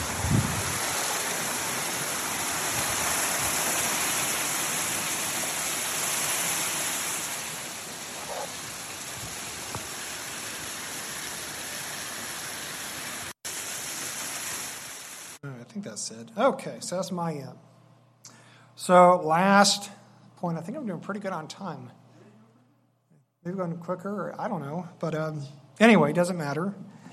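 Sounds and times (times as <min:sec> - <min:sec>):
mineral spring water flowing: 0:00.0 - 0:15.4
speech: 0:15.8 - 0:17.7, 0:18.9 - 0:22.0, 0:23.4 - 0:27.0.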